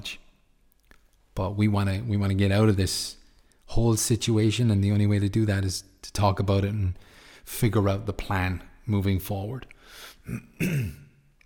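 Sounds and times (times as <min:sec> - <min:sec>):
speech: 0:01.4 - 0:11.0
person coughing at the microphone: 0:10.2 - 0:11.2.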